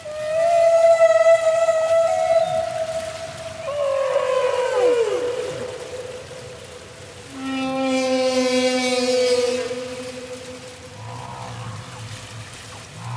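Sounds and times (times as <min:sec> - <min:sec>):
humpback whale moaning and crying: 0:00.0 - 0:13.1.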